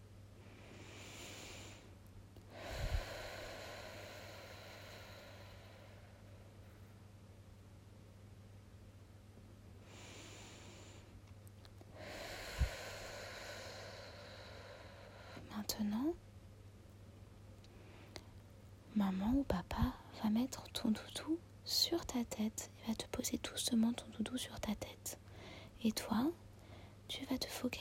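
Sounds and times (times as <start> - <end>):
steady low hum: 0.0 - 27.7
deep slow breathing during a guided relaxation exercise for a child: 0.4 - 6.9, 9.8 - 11.2, 11.9 - 15.5
speech: 19.0 - 25.2, 25.8 - 26.4, 27.1 - 27.7.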